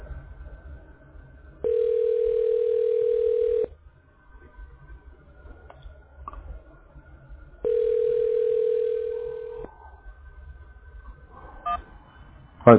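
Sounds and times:
faint hum: 0.0s - 12.7s
telephone ringing tone: 1.6s - 3.7s, 7.6s - 9.7s.

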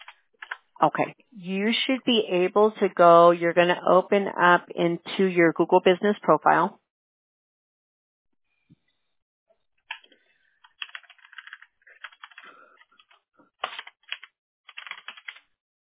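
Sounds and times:
typing on a computer keyboard: 0.0s - 0.6s, 9.9s - 15.5s
speech: 0.8s - 6.8s.

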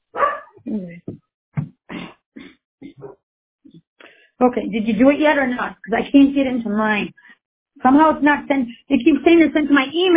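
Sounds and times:
dog barking: 0.1s - 0.6s
speech: 0.7s - 1.1s, 4.4s - 7.2s, 7.8s - 10.1s.

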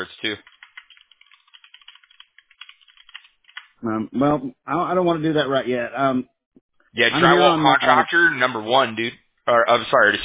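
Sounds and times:
speech: 0.2s - 0.6s, 3.8s - 10.2s
rapid typing on a computer keyboard: 0.2s - 3.8s.

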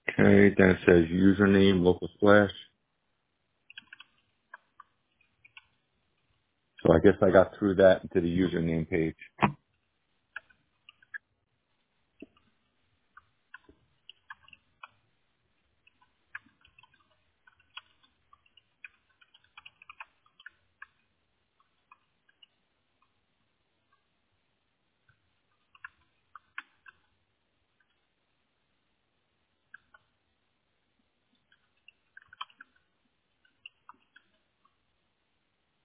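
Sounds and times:
speech: 0.2s - 2.7s, 6.9s - 9.6s
typing on a computer keyboard: 3.6s - 6.3s, 10.3s - 11.2s, 12.2s - 23.2s, 25.0s - 27.2s, 29.6s - 30.2s, 31.3s - 34.8s.

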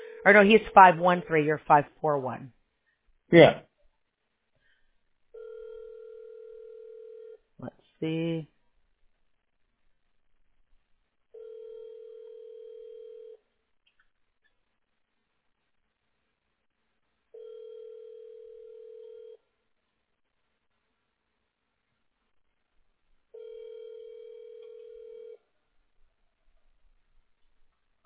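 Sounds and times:
speech: 0.2s - 2.6s, 3.3s - 3.7s, 7.6s - 8.5s
outgoing phone call ringback tone: 5.4s - 7.4s, 11.4s - 13.4s, 17.3s - 19.4s, 23.3s - 25.4s.

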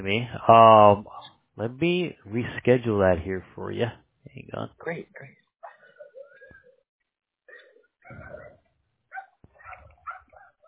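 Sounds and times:
speech: 0.0s - 5.4s
several dogs barking and yipping outdoors: 7.5s - 10.6s.

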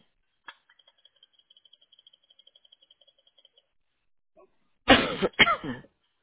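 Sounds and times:
faint rapid high-pitched ticking: 0.7s - 3.8s
person coughing harshly: 4.9s - 6.0s.

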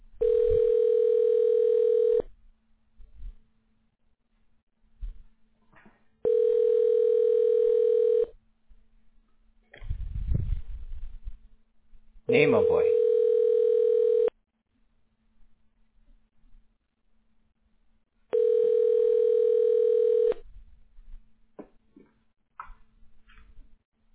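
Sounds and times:
phone line's ringback tone: 0.2s - 2.3s, 6.2s - 8.3s, 12.6s - 14.3s, 18.3s - 20.4s
speech: 12.3s - 13.0s.

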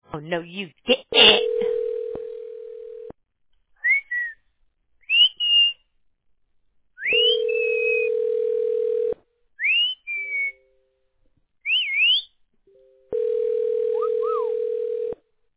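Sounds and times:
speech: 0.2s - 1.4s
steady telephone dial tone: 1.4s - 3.1s, 7.2s - 9.2s, 13.1s - 15.2s
bird whistling in rising chirps and slides: 3.8s - 4.4s, 5.1s - 5.8s, 7.0s - 8.1s, 9.6s - 10.6s, 11.7s - 12.3s.

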